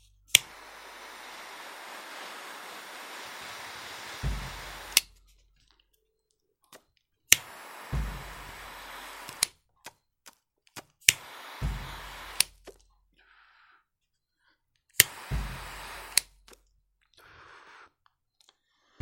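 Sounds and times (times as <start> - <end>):
butane torch lighter click: 0.3 - 5.1, 6.8 - 10.0, 11.0 - 12.8, 14.9 - 16.6
butane torch lighter roaring hiss lighting a cigar: 0.3 - 5.1, 7.3 - 9.5, 11.1 - 12.6, 15.0 - 16.4.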